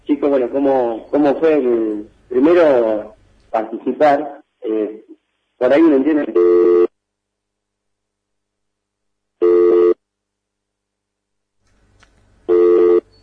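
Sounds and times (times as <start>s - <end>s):
speech: 0.2s - 5.0s, 5.6s - 6.8s
telephone ringing with electronic trilling tone: 6.4s - 6.9s, 9.4s - 10.0s, 12.5s - 13.2s.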